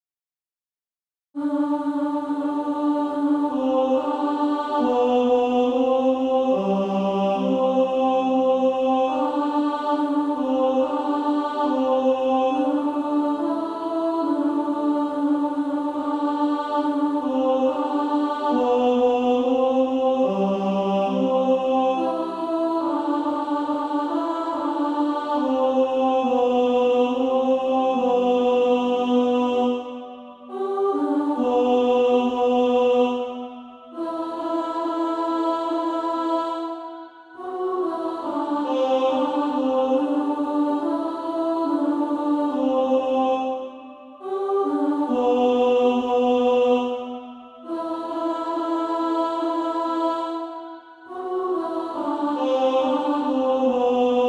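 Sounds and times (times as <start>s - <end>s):
female choir singing: 1.4s - 54.2s.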